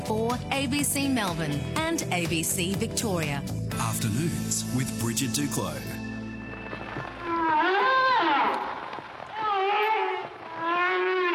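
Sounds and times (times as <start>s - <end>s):
speech: 0.1s - 6.0s
whale moaning calls: 7.2s - 11.3s.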